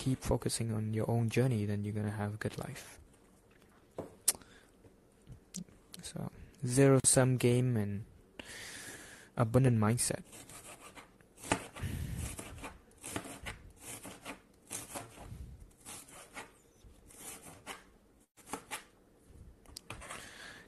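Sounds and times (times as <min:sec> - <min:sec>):
speech: 0:00.0 - 0:03.0, 0:05.6 - 0:08.6, 0:09.4 - 0:10.5
knife chopping onions on a board: 0:10.3 - 0:15.2, 0:18.4 - 0:18.9.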